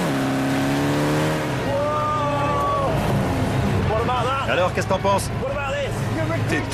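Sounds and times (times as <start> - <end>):
turbocharged car engine revving: 0.0 - 4.5
speech: 4.6 - 5.6, 6.2 - 6.7.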